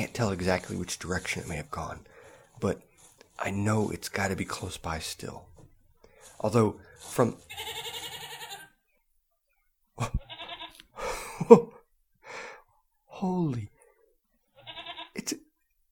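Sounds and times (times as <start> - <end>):
speech: 0.0 - 5.5, 6.4 - 7.9, 10.0 - 10.3, 11.4 - 11.8, 13.2 - 13.7
goat bleating: 7.4 - 8.8, 10.1 - 10.8, 14.6 - 15.2
person gasping: 11.0 - 11.5, 12.2 - 12.7.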